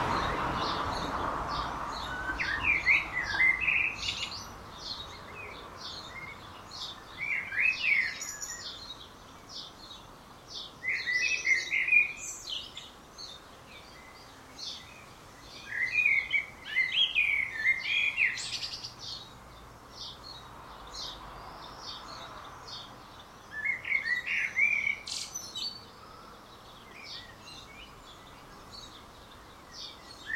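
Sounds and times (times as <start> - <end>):
Common blackbird Turdus merula singing warbled phrases: 0.0 - 30.3
steady background hiss: 0.0 - 30.3.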